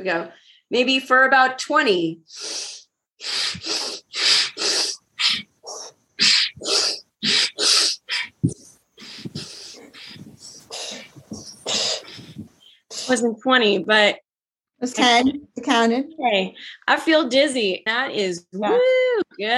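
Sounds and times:
speech: 0.0 - 4.7, 13.1 - 14.2, 14.8 - 19.5
rapid forceful breathing in and out through the nose: 2.3 - 13.2.

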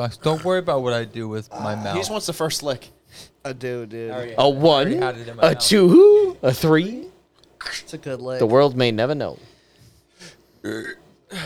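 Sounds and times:
speech: 0.0 - 9.5, 10.2 - 11.4
burps into a microphone: 10.6 - 11.4
throaty belches: 10.6 - 11.4.

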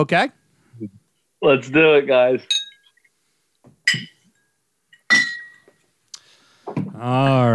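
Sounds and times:
speech: 0.0 - 2.6, 3.9 - 4.1, 6.7 - 7.5
glass bottles clinking in a toast: 2.4 - 3.1, 3.8 - 5.8.

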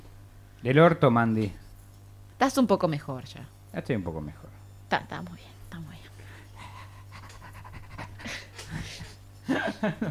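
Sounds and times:
constant low electrical hum: 0.0 - 10.0
speech: 0.6 - 1.6, 2.4 - 6.0, 9.5 - 10.0
female dog panting: 6.6 - 9.1
laughter: 8.2 - 10.0.

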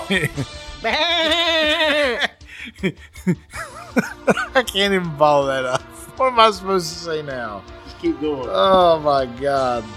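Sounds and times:
man chuckling: 0.0 - 0.6, 1.2 - 4.7
speech: 0.1 - 9.9
man imitating a ram's bleat: 0.8 - 2.4.

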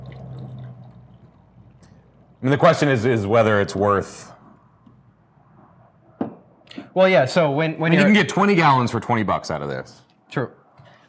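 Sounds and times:
bottled water from Norway pouring from a bottle: 0.0 - 2.5
speech: 2.4 - 4.4, 7.0 - 11.0.

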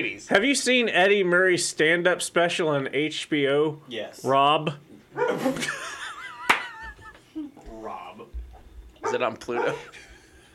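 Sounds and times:
speech: 0.0 - 6.0, 9.0 - 10.1
dog giving short sharp barks: 5.1 - 5.6, 9.0 - 9.9
laughter: 5.2 - 7.6, 9.6 - 10.5.

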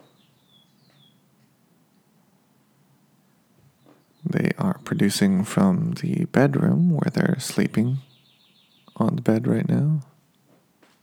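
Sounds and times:
birds chirping outside: 0.0 - 1.3, 3.6 - 10.1
speech: 4.3 - 8.1, 9.0 - 10.1.

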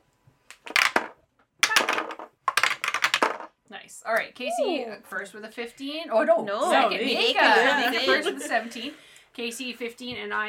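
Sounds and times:
dice clattering across a surface: 0.5 - 3.6
speech: 3.8 - 10.4
laughter: 6.8 - 8.9.

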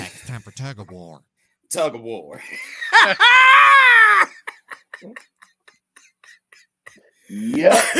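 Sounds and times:
speech: 0.3 - 5.3, 7.3 - 7.9
person screaming high-pitched: 3.2 - 4.3.

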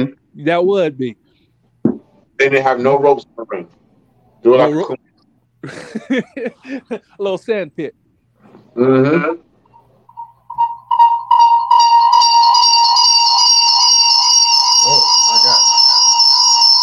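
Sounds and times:
speech: 0.0 - 1.2, 2.4 - 3.8, 4.4 - 8.0, 8.8 - 9.5
laughter: 5.6 - 7.2
loud high-pitched electronic alarm blaring: 10.1 - 16.8.

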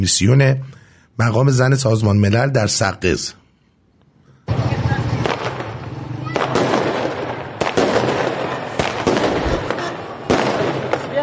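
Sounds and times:
speech: 0.0 - 3.4
outdoor crowd noise at street celebration: 4.1 - 11.2
fireworks crackling and banging during outdoor street celebration: 4.5 - 11.2.

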